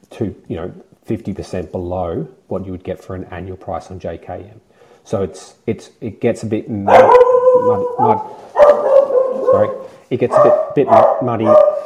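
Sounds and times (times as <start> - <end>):
speech: 0.2 - 8.5, 9.5 - 11.8
dog barking: 6.9 - 11.8.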